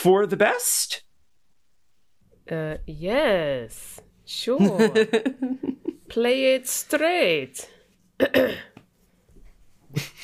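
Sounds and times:
speech: 0.0 - 1.0, 2.5 - 8.8, 9.9 - 10.2
person coughing harshly: 8.2 - 8.8.

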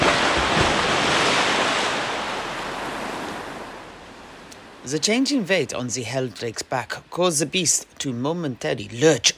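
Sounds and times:
ocean waves crashing: 0.0 - 6.0
speech: 4.9 - 9.3.

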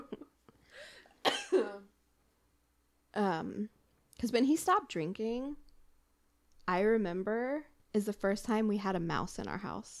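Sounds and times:
person coughing from dust in a room: 0.8 - 1.8
speech: 3.2 - 5.6, 6.7 - 9.9.

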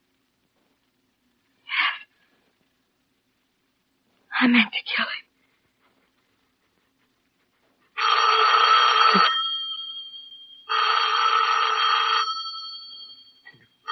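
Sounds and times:
speech: 4.4 - 5.2
old-fashioned telephone bell ringing: 8.0 - 13.9.

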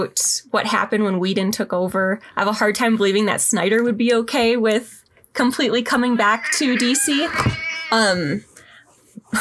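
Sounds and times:
speech: 0.0 - 8.5
cat meowing: 6.1 - 8.4.

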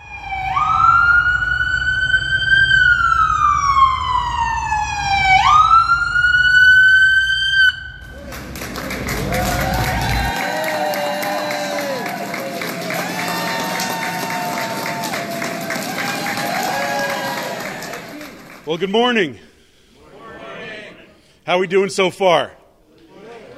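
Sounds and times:
police escort siren of arriving state police cavalcade wailing: 0.0 - 18.2
large crowd cheering and applauding arriving veterans: 8.0 - 18.9
speech: 18.8 - 19.5, 21.5 - 22.6.

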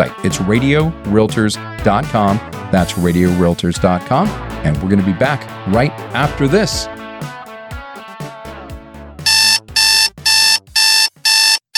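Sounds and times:
speech: 0.0 - 7.3
alarm clock beeping: 9.3 - 11.7.

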